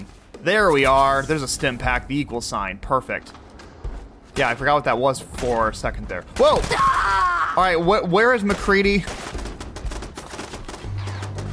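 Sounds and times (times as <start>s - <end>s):
speech: 0.4s - 3.4s, 4.4s - 9.3s
video game turret automatic gunfire: 8.6s - 11.5s.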